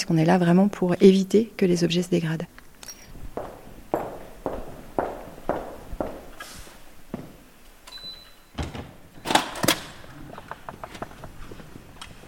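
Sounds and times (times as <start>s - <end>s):
speech: 0.0s - 2.6s
footsteps striding across a hard floor: 3.0s - 7.5s
door creaking and rattling as it opens: 8.5s - 11.0s.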